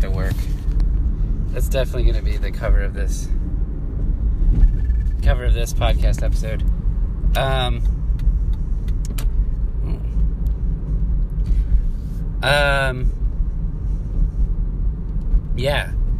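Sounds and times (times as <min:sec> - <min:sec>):
road traffic rumbling at a car accident scene: 0:00.0 - 0:16.1
speech: 0:00.1 - 0:00.6, 0:01.5 - 0:03.4, 0:05.2 - 0:06.7, 0:07.3 - 0:08.0, 0:12.4 - 0:13.2, 0:15.6 - 0:16.0.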